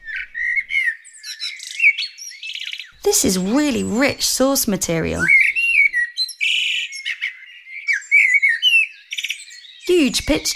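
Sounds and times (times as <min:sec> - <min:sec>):
blackbird singing a fluting phrase of varied whistles and chirps: 0:00.0 - 0:10.5
speech: 0:03.0 - 0:05.4, 0:10.1 - 0:10.5.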